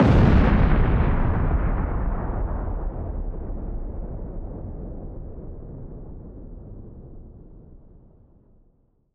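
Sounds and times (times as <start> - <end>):
deep weapon explosion: 0.0 - 7.3.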